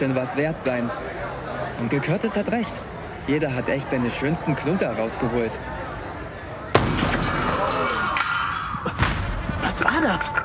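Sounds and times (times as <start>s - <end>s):
speech: 0.0s - 5.8s, 10.0s - 10.4s
steady noise: 0.0s - 10.4s
single sharp gunshot: 6.8s - 8.4s, 9.0s - 9.6s.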